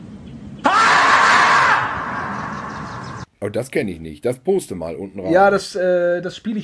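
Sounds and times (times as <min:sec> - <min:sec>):
marmot screaming shrill alarm cry: 0:00.6 - 0:03.2
speech: 0:03.4 - 0:06.6.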